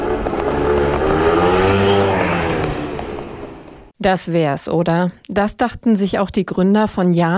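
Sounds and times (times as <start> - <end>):
small motor scooter engine revving and pulling away: 0.0 - 3.9
speech: 4.0 - 7.3.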